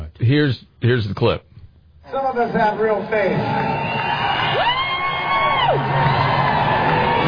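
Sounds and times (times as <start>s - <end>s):
speech: 0.2s - 1.5s, 2.1s - 4.2s
concert crowd roaring: 3.2s - 7.2s
people booing: 3.5s - 7.2s
long drawn-out yell: 3.6s - 7.2s.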